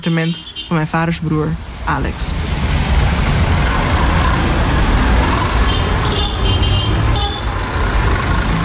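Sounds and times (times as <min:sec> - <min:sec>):
speech: 0:00.0 - 0:02.5
busy street traffic rumbling: 0:00.0 - 0:08.6
three-wheeled taxis passing: 0:00.0 - 0:08.6
small motorbikes passing: 0:02.2 - 0:08.6
short horn toots: 0:03.5 - 0:07.7.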